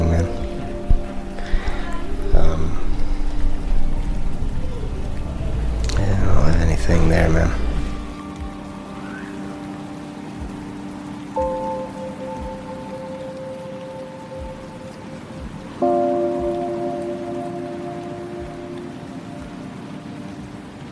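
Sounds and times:
low sustained droning tone: 0.0s - 8.6s
steady rain from a passing storm: 0.0s - 20.8s
speech: 7.1s - 7.6s.

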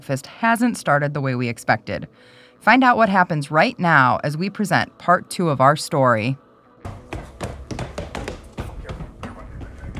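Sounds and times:
speech: 0.0s - 7.0s
heavy footsteps running up wooden stairs: 6.8s - 9.9s.

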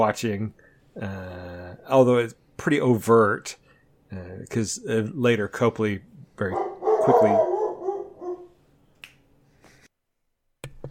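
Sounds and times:
speech: 0.0s - 7.5s
dog barking: 6.5s - 8.6s.

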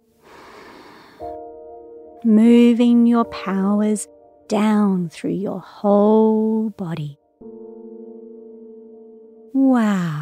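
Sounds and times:
deep breath in and out during a guided breathing exercise for children: 0.2s - 1.4s
speech: 2.2s - 7.2s, 9.5s - 10.1s.

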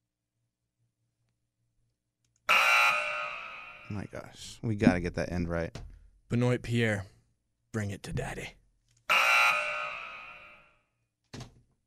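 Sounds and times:
loud harsh electronic buzzer blaring: 2.5s - 4.0s, 9.1s - 10.8s
speech: 3.9s - 7.1s, 7.7s - 8.6s.

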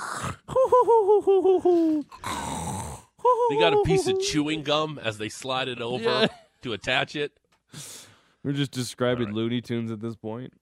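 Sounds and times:
voice imitating snoring: 0.0s - 0.6s, 2.1s - 3.2s
speech: 0.8s - 2.2s, 3.3s - 10.5s.

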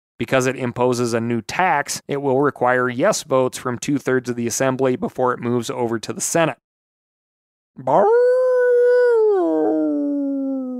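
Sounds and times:
speech: 0.2s - 6.6s, 7.8s - 8.4s
single wolf howling: 7.9s - 10.7s.

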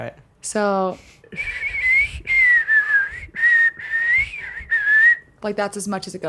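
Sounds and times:
speech: 0.0s - 1.7s, 5.4s - 6.2s
person whistling long high wavering notes: 1.4s - 5.3s.

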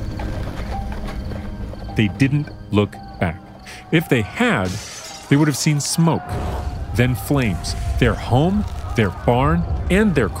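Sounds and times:
horses trotting with hooves clip-clopping: 0.0s - 2.6s
speech: 2.0s - 10.3s.

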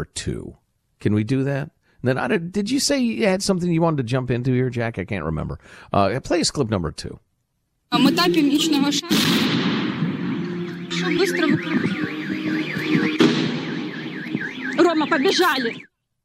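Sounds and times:
speech: 0.0s - 7.2s, 7.9s - 9.6s, 11.0s - 13.2s, 14.9s - 15.9s
RPG rocket fired at a fun fair: 9.1s - 10.3s, 13.2s - 13.9s
RPG rocket sustained rushing roar: 9.1s - 10.6s, 12.7s - 14.1s
loud bangs: 9.1s - 15.6s
warbling siren-like wail: 9.9s - 15.9s.

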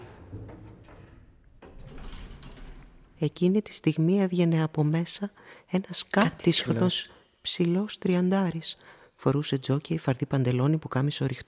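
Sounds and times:
door being opened with a rolling scraping rush: 0.0s - 3.2s
speech: 3.2s - 11.4s.

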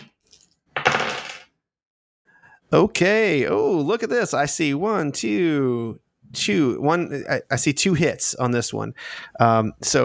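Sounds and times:
handful of dice clattering across a hard table: 0.0s - 1.6s
speech: 2.7s - 10.0s.

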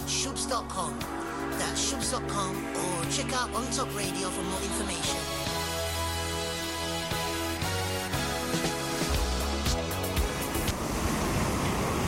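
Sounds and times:
tonal musical bed: 0.0s - 10.7s
speech: 0.2s - 5.5s
gentle sea waves washing against cliffs: 10.3s - 12.0s.

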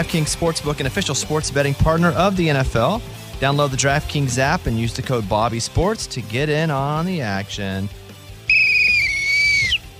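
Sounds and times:
speech: 0.0s - 8.0s
sustained whistle: 8.5s - 9.9s.

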